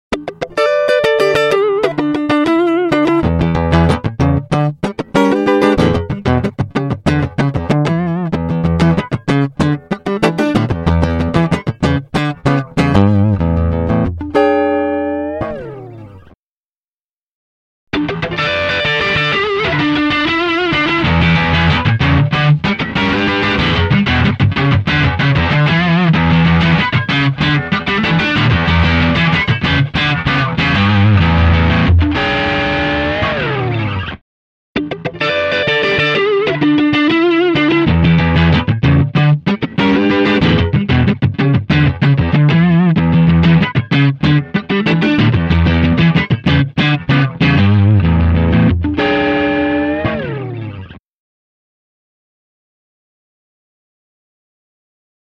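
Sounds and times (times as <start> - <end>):
electric guitar funk riff in E minor: 0.1 - 16.4, 17.9 - 34.2, 34.8 - 51.0.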